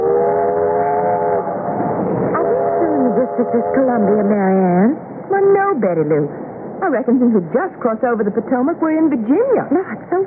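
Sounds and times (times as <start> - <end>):
coal-burning steam train whistle blowing multi-toned blast: 0.0 - 1.6, 2.4 - 3.9
coal-burning steam train engine rumbling and clattering: 0.0 - 10.2
speech: 3.4 - 10.2.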